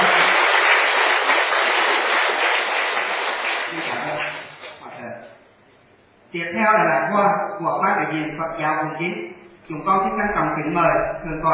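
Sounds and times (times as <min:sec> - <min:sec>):
audience applauding at a ceremony: 0:00.0 - 0:04.8
speech: 0:06.4 - 0:11.5.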